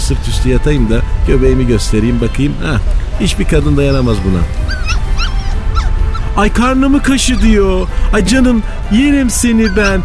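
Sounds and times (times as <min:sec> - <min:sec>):
steady low rumble: 0:00.0 - 0:10.0
speech: 0:00.1 - 0:04.8, 0:06.4 - 0:10.0
street dog whimpering with high sliding whines and yips: 0:03.8 - 0:06.4, 0:07.0 - 0:07.9, 0:09.4 - 0:10.0.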